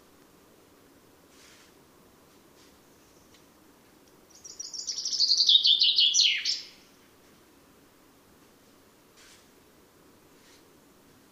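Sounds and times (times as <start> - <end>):
Fringilla coelebs cascading song: 4.3 - 6.8.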